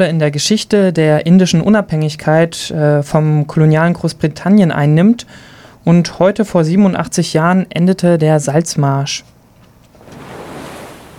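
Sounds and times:
speech: 0.0 - 9.3
soft wind-like hiss: 9.9 - 11.1
Arabian Sea waves washing onto the beach: 10.0 - 11.1.

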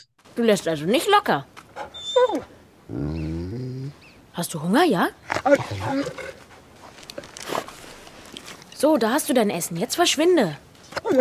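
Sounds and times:
speech: 0.0 - 1.6, 2.2 - 3.3, 4.4 - 6.4, 8.8 - 11.1
dog whining: 1.8 - 4.2, 5.4 - 6.4, 11.0 - 11.1
dog roaring growl in film excerpt: 2.3 - 4.0, 5.3 - 6.6.

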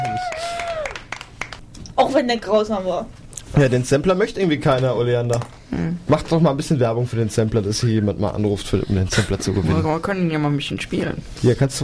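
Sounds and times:
small group clapping: 0.0 - 1.7
speech: 2.0 - 11.8.

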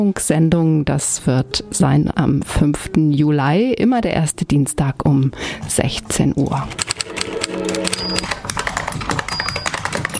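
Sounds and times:
speech: 0.0 - 7.0
brief tonal hum: 1.8 - 9.1
typing on keys: 6.3 - 10.1.

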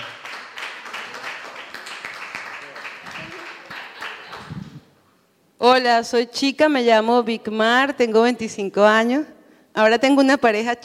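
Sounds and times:
audience applauding: 0.0 - 4.8
speech: 5.6 - 10.8.

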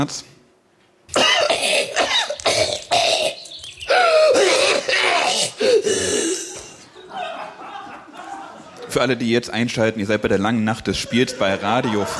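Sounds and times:
speech: 0.0 - 0.4, 8.9 - 12.1
harsh throaty and short hacking coughs: 1.1 - 6.8
throat clearing: 1.1 - 6.8
laughter: 6.4 - 9.0, 10.8 - 12.1.

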